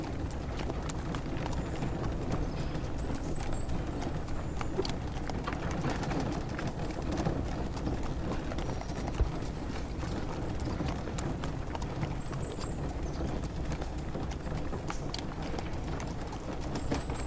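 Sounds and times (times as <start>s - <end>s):
carriage horses trotting with hooves clip-clopping in a spring forest: 0.0s - 17.2s.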